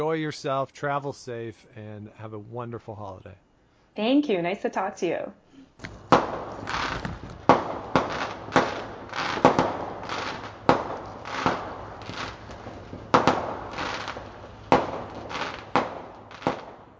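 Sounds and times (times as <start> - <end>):
speech: 0.0 - 6.0
fireworks exploding outdoors at night: 5.8 - 16.9.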